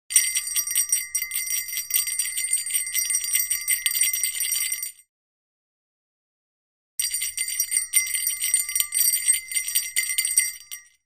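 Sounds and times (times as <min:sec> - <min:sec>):
Christmas bells: 0:00.1 - 0:05.0, 0:07.0 - 0:11.0.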